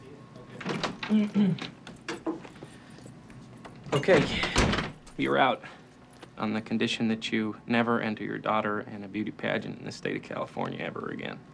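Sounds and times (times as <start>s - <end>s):
door opening at a glass-walled office: 0.5s - 2.5s, 3.6s - 5.3s
speech: 1.1s - 1.8s, 3.9s - 4.6s, 5.2s - 5.8s, 6.4s - 11.5s.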